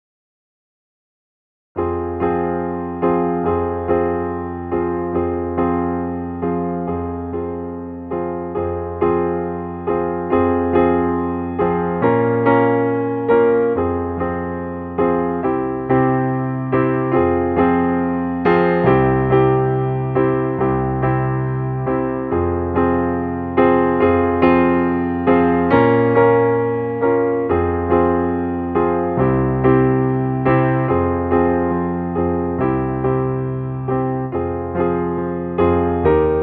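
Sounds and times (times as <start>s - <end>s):
piano accompaniment for a D string exercise: 1.8s - 36.4s.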